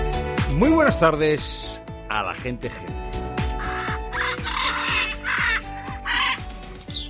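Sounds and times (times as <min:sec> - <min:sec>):
speech: 0:00.6 - 0:03.3
two large blue and red macaws screeching: 0:03.6 - 0:06.5.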